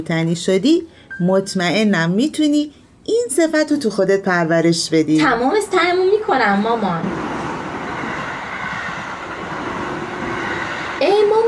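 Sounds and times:
speech: 0.0s - 7.4s
train rumbling: 5.2s - 11.4s.

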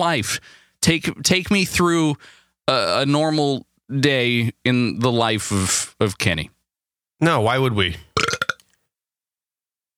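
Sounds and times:
speech: 0.0s - 6.6s, 7.2s - 8.1s
dog burp: 8.2s - 8.6s.

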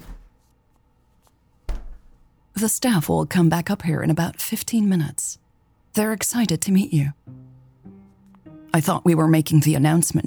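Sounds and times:
small fridge door being pulled open: 1.7s - 2.2s
speech: 2.6s - 5.4s, 6.0s - 7.4s, 8.7s - 10.2s.

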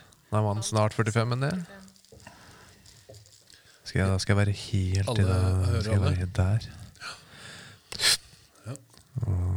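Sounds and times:
speech: 0.3s - 1.9s, 3.9s - 7.2s, 8.7s - 9.5s
loud breathing into a microphone: 2.2s - 2.9s, 6.6s - 8.6s.

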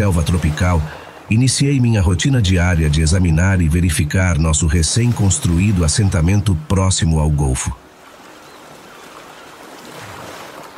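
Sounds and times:
speech: 0.0s - 7.8s
sea surf at a gulf beside a tropical jungle: 0.0s - 10.7s.

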